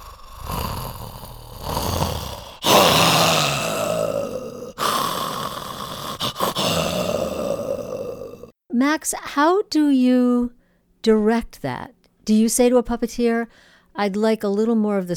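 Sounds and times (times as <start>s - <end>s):
puppeteers voicing a tiger puppet's heavy rasping breaths: 0.0s - 8.5s
puppeteers voicing a tiger puppet's low growls and snarls: 0.0s - 8.5s
speech: 8.8s - 15.1s.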